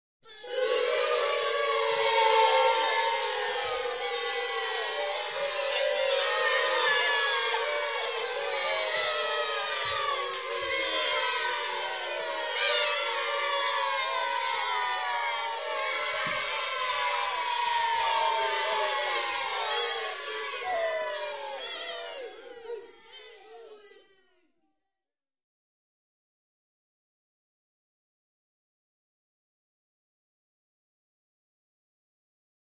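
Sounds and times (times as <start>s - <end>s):
children booing at a primary school: 0.3s - 24.4s.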